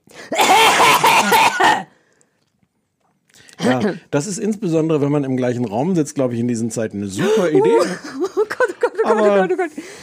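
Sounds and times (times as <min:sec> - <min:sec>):
loud deliberate coughing to test a microphone cough-mute button: 0:00.3 - 0:01.9
speech: 0:03.6 - 0:08.2, 0:09.0 - 0:10.0
laughter: 0:07.2 - 0:09.7.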